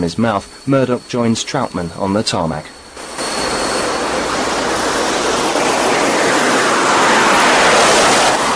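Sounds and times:
speech: 0.0s - 2.8s
wind noise: 0.0s - 8.5s
small propeller plane accelerating down a runway: 2.8s - 8.5s.

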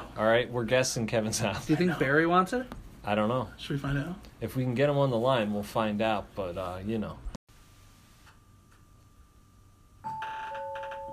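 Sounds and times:
speech: 0.2s - 7.3s
electronic doorbell chime ringing: 8.4s - 11.1s.

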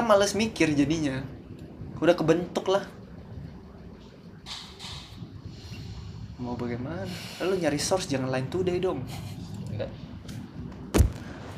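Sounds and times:
speech: 0.1s - 1.4s, 2.0s - 3.0s, 6.4s - 10.0s
object slammed down hard near the recording device: 10.9s - 11.5s.

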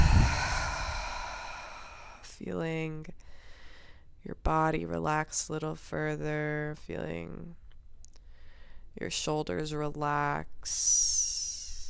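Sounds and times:
long exhale through the mouth during a relaxation breathing exercise: 0.0s - 2.2s
speech: 2.4s - 3.3s, 4.2s - 7.6s, 9.0s - 11.3s.

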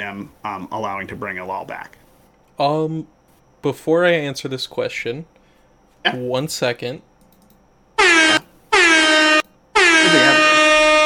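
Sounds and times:
speech: 0.0s - 2.0s, 2.6s - 5.4s, 6.0s - 7.1s
loud brassy air horn blasts: 8.0s - 11.0s.

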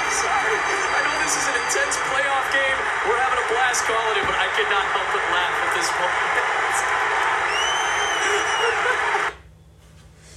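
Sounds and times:
high whistle: 0.0s - 2.5s, 7.4s - 8.9s
large stadium crowd at a baseball game roaring and cheering: 0.0s - 9.4s
laughter: 7.9s - 9.3s.

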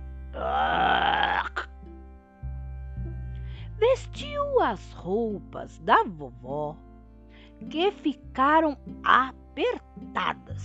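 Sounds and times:
low hum: 0.0s - 10.6s
voice imitating a wolf's big loud burp: 0.4s - 1.7s
speech: 4.0s - 6.9s, 7.6s - 10.6s.

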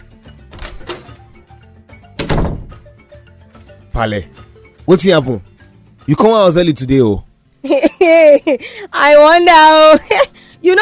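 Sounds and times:
door opening with heavy thunks and knocks: 0.4s - 1.2s, 2.1s - 2.9s
speech: 4.0s - 5.5s, 6.1s - 10.8s.

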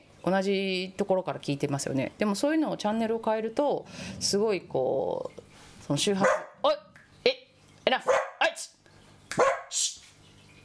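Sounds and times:
speech: 0.2s - 6.8s
dog barking outside at a stopped car: 6.2s - 6.6s, 8.0s - 8.4s, 9.4s - 9.8s.

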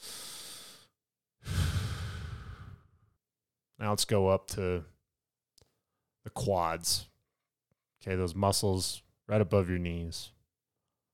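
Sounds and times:
deep breath in through the nose and out through the mouth: 0.0s - 3.1s
speech: 3.8s - 4.9s, 6.3s - 7.1s, 8.0s - 10.4s.

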